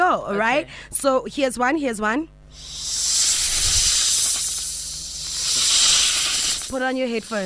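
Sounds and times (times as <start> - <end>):
speech: 0.1 - 3.2, 6.7 - 7.4
snake hissing: 2.5 - 7.4.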